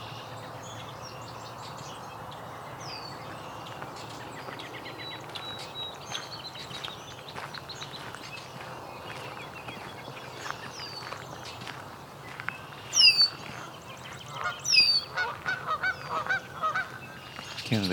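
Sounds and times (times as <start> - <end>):
outdoor ambience: 0.0 - 17.9
red-winged blackbird calls: 0.0 - 17.9
geese honking on a pond: 14.3 - 17.0.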